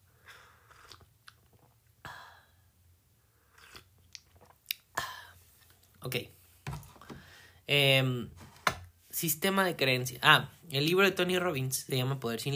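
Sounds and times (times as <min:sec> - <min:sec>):
person sipping a drink with slurps and swallows: 0:00.2 - 0:02.6, 0:03.3 - 0:05.9
sharper mouth smacks: 0:00.6 - 0:01.8, 0:03.5 - 0:05.0
speech: 0:06.0 - 0:06.4, 0:07.7 - 0:08.4, 0:09.2 - 0:12.5.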